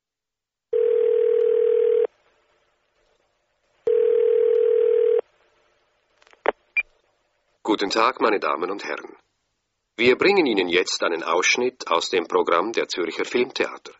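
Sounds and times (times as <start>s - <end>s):
telephone ringing tone over the line: 0.7s - 2.1s, 3.9s - 5.2s
speech: 7.7s - 9.3s, 10.0s - 13.9s.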